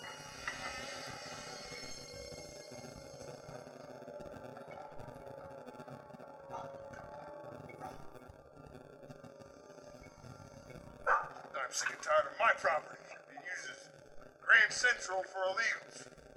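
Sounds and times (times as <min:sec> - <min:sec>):
low hum: 0:00.0 - 0:16.3
dog barking: 0:11.0 - 0:11.4
voices: 0:11.1 - 0:16.0.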